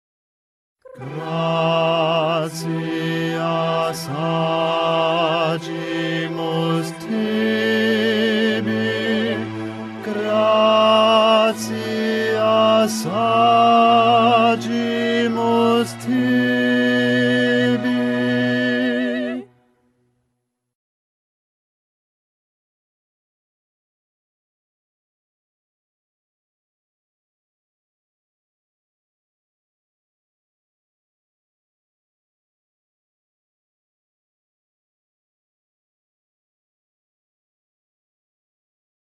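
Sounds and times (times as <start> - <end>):
bass voice singing: 1.0 - 19.4.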